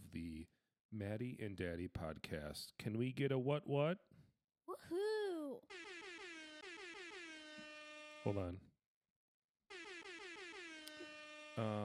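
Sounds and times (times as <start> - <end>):
speech: 0.9 - 4.1, 4.8 - 6.0, 8.2 - 8.7, 11.6 - 11.8
long loud air horn blasts: 5.7 - 8.6, 9.7 - 11.8.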